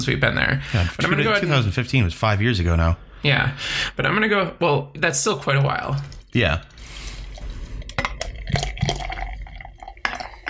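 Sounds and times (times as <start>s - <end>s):
speech: 0.0s - 7.0s
beer pouring into a stein: 5.7s - 10.4s.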